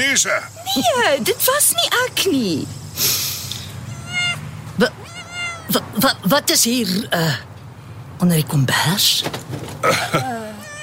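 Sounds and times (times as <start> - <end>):
speech: 0.0 - 3.2, 4.8 - 5.0, 5.7 - 7.5, 8.2 - 10.4
cat meowing: 3.8 - 5.8, 10.3 - 10.8.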